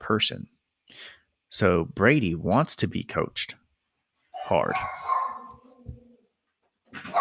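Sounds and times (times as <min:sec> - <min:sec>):
speech: 0:00.1 - 0:03.6, 0:04.5 - 0:05.1
dog barking and whining: 0:04.4 - 0:06.2, 0:07.0 - 0:07.2.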